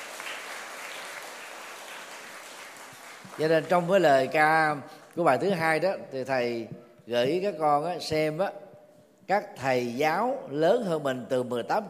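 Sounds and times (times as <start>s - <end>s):
crowd applauding honoring teachers: 0.0s - 3.9s
speech: 3.4s - 8.6s, 9.3s - 11.8s.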